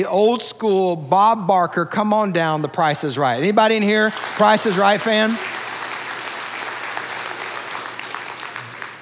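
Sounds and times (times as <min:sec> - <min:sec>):
speech: 0:00.0 - 0:05.6
audience applause: 0:03.8 - 0:09.0.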